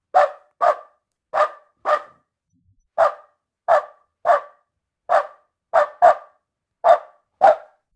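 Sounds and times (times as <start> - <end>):
dog barking energetically: 0.1 - 2.2, 3.0 - 7.8.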